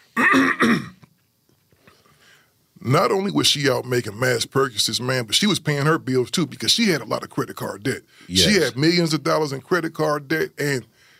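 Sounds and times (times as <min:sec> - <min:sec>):
speech: 0:00.2 - 0:00.9, 0:02.9 - 0:10.9
person clearing throat: 0:00.2 - 0:01.1.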